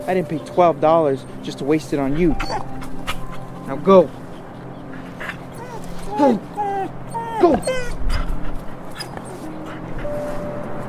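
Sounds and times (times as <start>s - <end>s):
speech: 0.0s - 2.9s, 3.7s - 4.2s, 6.2s - 6.5s, 7.4s - 7.8s
stray dog whimpering and yipping: 2.2s - 10.4s.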